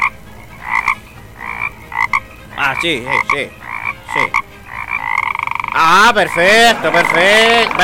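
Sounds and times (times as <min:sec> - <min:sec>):
toad croaking: 0:00.0 - 0:07.8
speech: 0:02.7 - 0:04.3, 0:05.8 - 0:07.8
laughter: 0:06.1 - 0:07.8.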